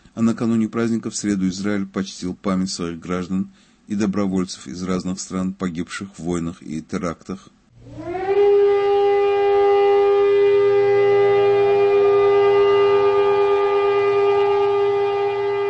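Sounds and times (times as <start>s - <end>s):
speech: 0.2s - 8.1s
civil defense memorial siren: 7.7s - 15.6s.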